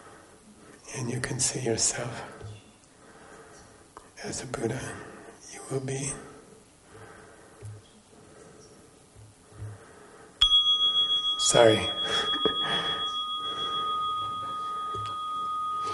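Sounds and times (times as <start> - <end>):
speech: 0.9 - 2.5, 4.2 - 5.1, 5.7 - 6.3, 11.5 - 13.0
meditation bell ringing: 10.4 - 15.9.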